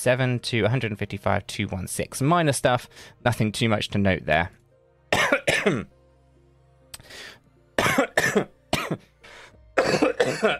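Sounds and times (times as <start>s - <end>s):
speech: 0.0s - 4.6s, 5.2s - 6.0s, 7.9s - 9.1s, 9.8s - 10.5s
person having a coughing fit: 5.1s - 5.9s, 7.8s - 9.1s, 9.8s - 10.5s.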